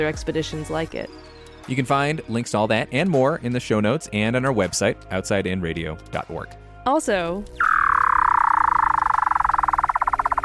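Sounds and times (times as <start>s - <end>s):
speech: 0.0s - 7.7s
Weddell seal trill in Antarctica: 7.6s - 10.4s.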